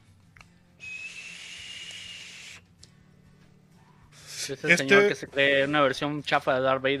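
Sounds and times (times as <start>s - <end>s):
vaporizer inhale hiss with thin high whistle: 0.8s - 2.6s
speech: 4.5s - 6.9s.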